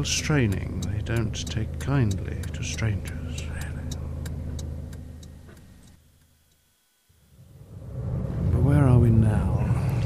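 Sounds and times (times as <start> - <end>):
speech: 0.0 - 3.2
road noise: 0.0 - 6.0, 7.2 - 10.0
car engine rumbling: 0.0 - 6.5, 7.1 - 10.0
faint rhythmic ticking: 0.0 - 7.3.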